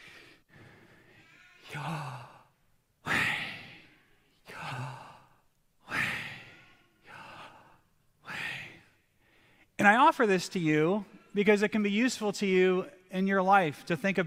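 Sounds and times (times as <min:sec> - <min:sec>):
person breathing slowly without moving the mouth: 0:00.0 - 0:09.8
speech: 0:01.7 - 0:02.2, 0:09.8 - 0:14.2.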